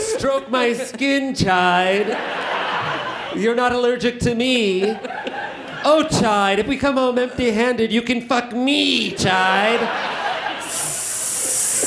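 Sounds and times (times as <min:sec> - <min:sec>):
laughter: 0:00.0 - 0:06.9, 0:09.0 - 0:11.2
speech: 0:00.2 - 0:05.2, 0:05.8 - 0:10.2
person voicing a hairless sphinx cat with a snake-like hiss: 0:10.6 - 0:11.8.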